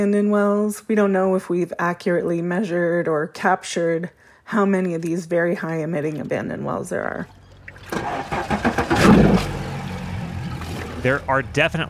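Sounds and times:
speech: 0.0 - 8.6, 11.0 - 11.8
boat engine running off Plaquemines Parish in the Gulf of Mexico: 6.3 - 11.8.

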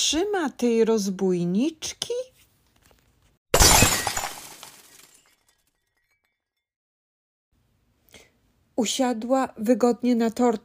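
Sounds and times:
speech: 0.1 - 2.3, 8.8 - 10.6
champagne glasses shattering: 3.6 - 6.6
tinkling spray of glass shards: 3.6 - 6.7.

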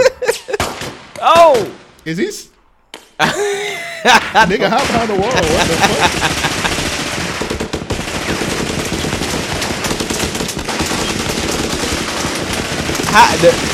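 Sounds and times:
laughter: 0.0 - 0.7, 3.2 - 6.9
automatic gunfire in a video game: 0.5 - 1.9, 4.1 - 13.7
speech: 1.5 - 2.6, 3.2 - 6.6, 13.2 - 13.7.

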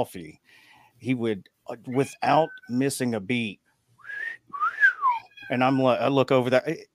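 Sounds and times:
speech: 0.0 - 3.6, 5.5 - 6.9
person whistling imitating a pet cockatiel's call: 4.0 - 5.3.

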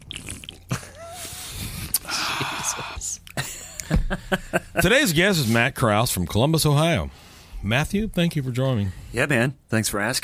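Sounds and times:
person sipping beer: 0.0 - 3.4
speech: 3.9 - 10.2.

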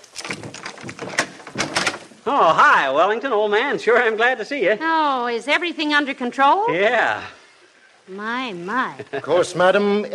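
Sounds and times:
door being unlocked: 0.0 - 2.1
latch clicking and rattling: 0.0 - 2.1
speech: 2.3 - 7.4, 8.1 - 10.1.

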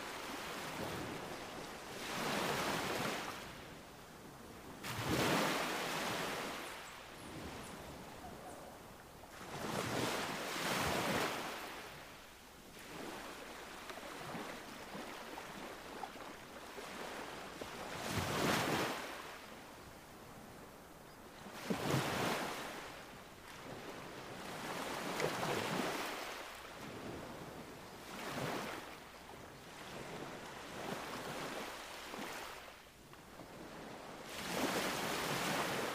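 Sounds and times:
ocean waves breaking: 0.0 - 3.6, 4.8 - 7.7, 9.3 - 12.1, 12.8 - 19.4, 21.4 - 29.0, 33.5 - 35.9
soft steady rush of water: 0.0 - 35.9.

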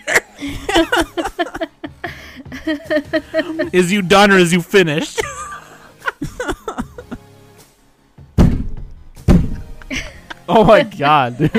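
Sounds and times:
people laughing: 0.0 - 7.2, 9.6 - 11.5
speech: 0.4 - 1.1, 3.6 - 5.3, 10.6 - 11.5
pounding on a door: 8.4 - 9.6.

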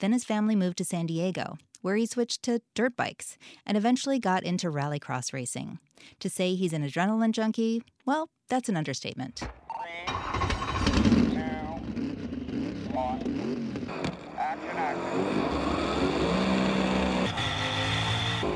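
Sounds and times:
speech: 0.0 - 11.2
rally car engine revving while drifting up a two-lane mountain road: 10.1 - 18.5.

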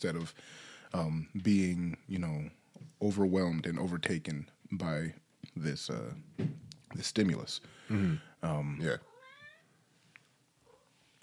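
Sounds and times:
speech: 0.0 - 9.1
cat meowing: 9.0 - 9.7.

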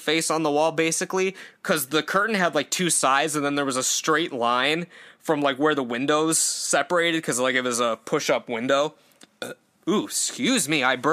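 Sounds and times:
speech: 0.0 - 11.1
burp: 9.4 - 9.6.

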